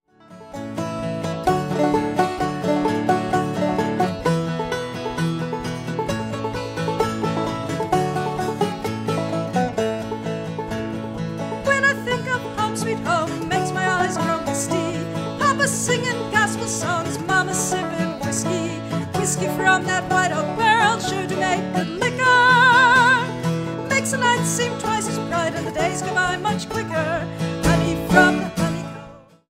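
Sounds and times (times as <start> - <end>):
clawhammer banjo playing: 0.1 - 29.4
person singing: 11.6 - 29.4.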